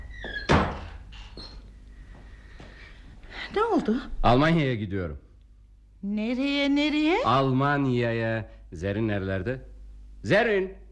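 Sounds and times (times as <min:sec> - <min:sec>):
door shutting with a solid thunk: 0:00.0 - 0:01.7
speech: 0:03.5 - 0:05.2, 0:06.0 - 0:10.8.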